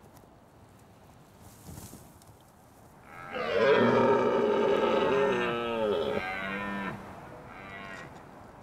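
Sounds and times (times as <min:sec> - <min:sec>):
red deer stag roaring in the Scottish Highlands: 0:03.1 - 0:08.1.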